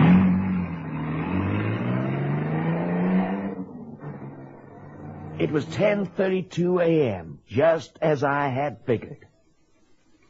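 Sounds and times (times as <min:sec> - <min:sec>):
car engine roaring and revving as it pulls away: 0:00.0 - 0:06.5
speech: 0:05.4 - 0:09.3.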